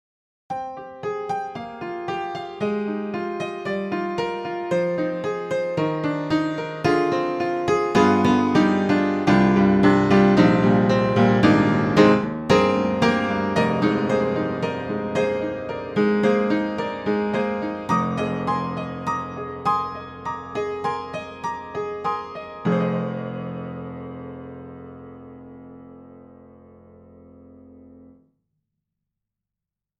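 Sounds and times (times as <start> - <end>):
vintage upright piano from 1914: 0.5 - 28.2.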